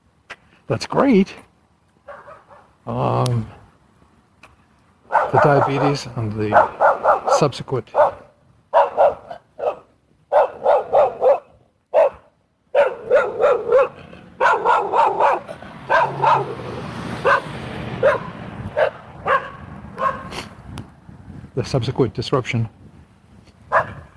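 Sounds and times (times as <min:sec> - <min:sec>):
speech: 0:00.7 - 0:01.5, 0:02.9 - 0:03.6, 0:05.3 - 0:06.8, 0:07.4 - 0:08.0, 0:21.6 - 0:22.8
dog barking: 0:02.1 - 0:02.7, 0:05.1 - 0:20.3, 0:23.7 - 0:24.1.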